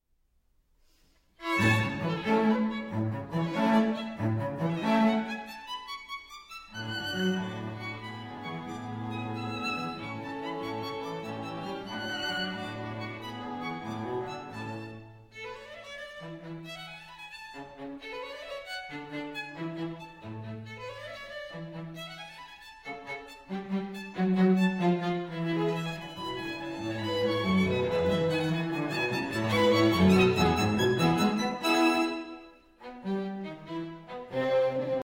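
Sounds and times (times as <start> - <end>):
string quartet playing in A major: 1.4 - 35.0.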